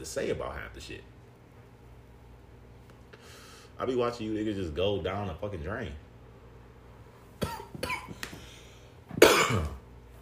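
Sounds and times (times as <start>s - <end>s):
speech: 0.0s - 1.2s, 3.8s - 6.0s, 7.4s - 8.1s
person coughing dry and hacking coughs: 7.4s - 8.3s, 9.1s - 9.9s.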